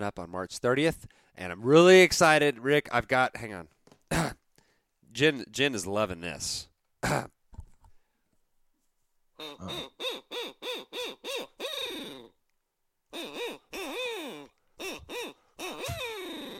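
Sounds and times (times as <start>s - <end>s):
speech: 0.0s - 3.8s, 5.1s - 7.4s, 9.4s - 11.4s
owl call imitating a barred owl hooting: 9.4s - 12.3s, 13.1s - 16.5s.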